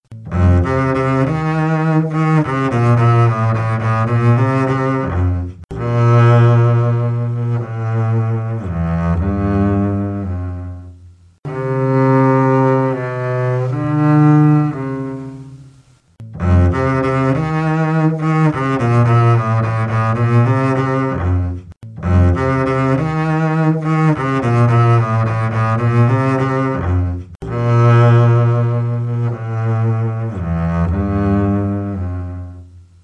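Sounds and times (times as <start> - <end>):
double bass: 0.0 - 33.0.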